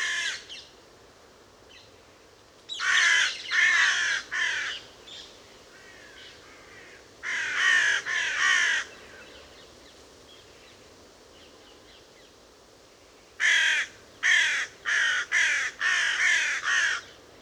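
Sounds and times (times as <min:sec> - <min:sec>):
carrion crow cawing, Corvus corone: 0:00.0 - 0:00.4, 0:02.8 - 0:04.8, 0:05.8 - 0:08.9, 0:13.4 - 0:17.1.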